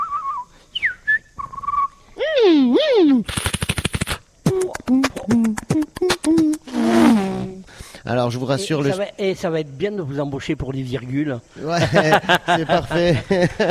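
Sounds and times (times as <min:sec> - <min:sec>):
human voice imitating sounds with the mouth: 0:02.2 - 0:07.7
speech: 0:08.0 - 0:13.6
laughter: 0:11.7 - 0:13.6.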